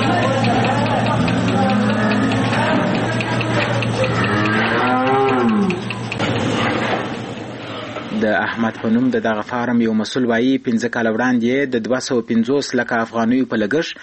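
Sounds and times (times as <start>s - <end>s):
low mechanical hum: 0.0s - 14.0s
cows mooing on a dairy farm: 0.9s - 6.1s
speech: 8.6s - 14.0s.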